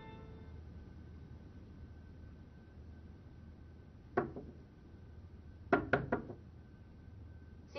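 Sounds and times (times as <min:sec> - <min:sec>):
knocking on a door: 0:04.2 - 0:04.6, 0:05.7 - 0:06.4.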